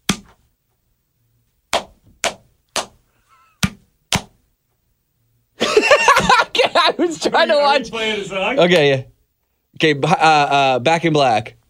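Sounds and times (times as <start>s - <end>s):
hand slapping a bare belly: 0.0s - 0.4s, 1.7s - 3.0s, 3.6s - 4.4s
laughter: 5.6s - 7.6s
speech: 7.0s - 9.1s, 9.8s - 11.6s.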